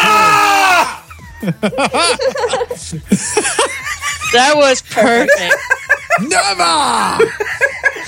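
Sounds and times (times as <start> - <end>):
person imitating a loud high-pitched scream: 0.0 - 1.1
laughter: 0.9 - 8.0
speech: 1.4 - 8.0.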